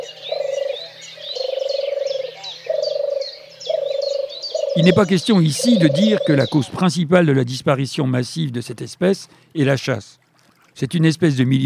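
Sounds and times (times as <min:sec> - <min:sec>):
European turtle dove purring call: 0:00.0 - 0:06.7
other birds chirping and twittering faintly: 0:00.0 - 0:11.2
speech: 0:04.8 - 0:10.2, 0:10.8 - 0:11.6.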